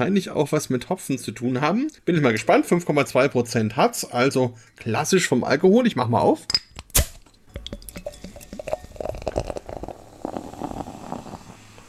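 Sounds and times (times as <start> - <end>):
speech: 0.0 - 6.6
bottle cap popping off a bottle of hop wheat beer: 6.5 - 8.9
cloudy beer pouring and fizzing: 7.5 - 11.8.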